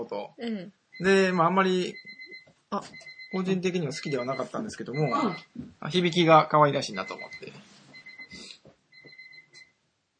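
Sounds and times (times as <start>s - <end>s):
speech: 0.0s - 7.6s
bath-filling alarm beeping with a thin high electronic tone: 0.9s - 5.5s, 6.8s - 9.7s.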